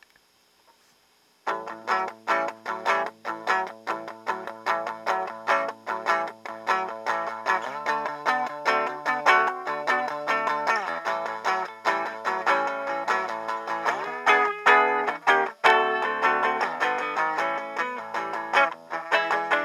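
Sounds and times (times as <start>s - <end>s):
1981 Guild Starfire electric guitar through amplifiers: 1.4s - 19.6s.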